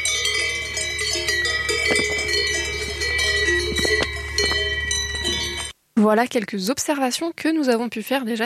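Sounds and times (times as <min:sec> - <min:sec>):
cow bells clanking in alpine pasture: 0:00.0 - 0:05.7
low outdoor rumble: 0:00.0 - 0:05.7
speech: 0:06.0 - 0:08.4.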